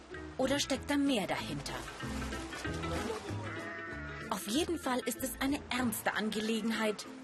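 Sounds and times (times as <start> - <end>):
speech: 0.4 - 2.8, 4.4 - 7.2
surf or splashing water at an Atlantic Ocean beach: 1.4 - 3.7
sheep bleating while being washed in the Atlantic Ocean at a beach in Senegal: 3.3 - 4.4.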